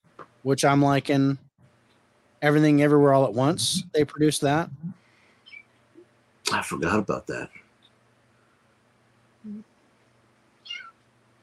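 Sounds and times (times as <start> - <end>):
speech: 0.4 - 1.4, 2.4 - 4.9, 6.5 - 7.6, 9.4 - 9.7
kitten meowing: 10.6 - 10.9.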